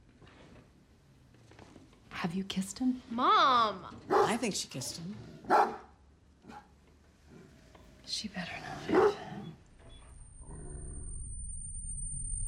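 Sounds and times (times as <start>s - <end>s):
speech: 2.2s - 5.8s, 8.2s - 9.1s
dog barking and growling: 4.0s - 7.6s, 8.6s - 9.6s.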